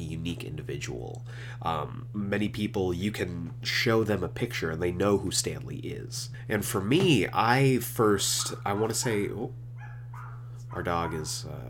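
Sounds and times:
speech: 0:00.2 - 0:09.6, 0:10.8 - 0:11.6
neighbour's dog barking: 0:08.4 - 0:11.4.

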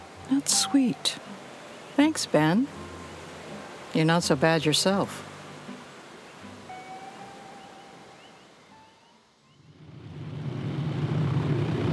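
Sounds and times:
rushing wash of water from float plane landing: 0:00.0 - 0:08.8, 0:09.7 - 0:11.9
speech: 0:00.3 - 0:01.4, 0:02.0 - 0:02.9, 0:03.9 - 0:05.3
small float plane propeller engine droning: 0:09.6 - 0:11.9.

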